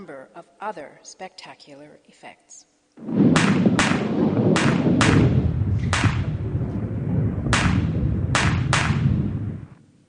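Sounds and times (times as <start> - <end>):
speech: 0.0 - 4.4
steady crackling rumbling hiss of a Chinese squib firework: 0.0 - 10.0
Chinese squib firework cracking: 3.0 - 9.8.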